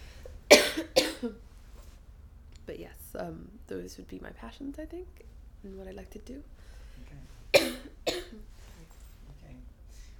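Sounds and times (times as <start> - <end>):
person having a coughing fit: 0.5 - 1.4, 7.6 - 8.4
speech: 1.2 - 1.4, 2.7 - 8.5.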